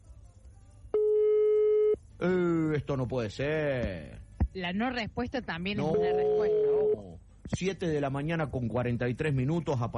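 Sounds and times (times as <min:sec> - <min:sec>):
phone call ringback tone, unanswered: 0:01.0 - 0:02.0, 0:05.8 - 0:07.1
speech: 0:02.2 - 0:06.6, 0:07.5 - 0:09.9.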